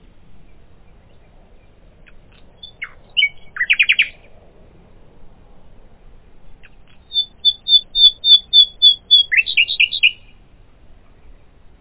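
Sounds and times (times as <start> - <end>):
common nightingale singing: 0.4 - 4.3, 6.6 - 10.4.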